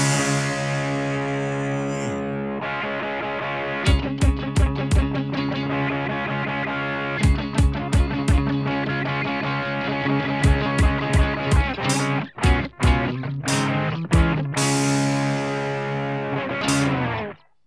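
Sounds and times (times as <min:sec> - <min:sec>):
sharp drum hits: 0:00.0 - 0:02.1, 0:03.9 - 0:05.1, 0:10.4 - 0:15.7
distorted electric guitar playing thick sustained chords: 0:00.0 - 0:17.4.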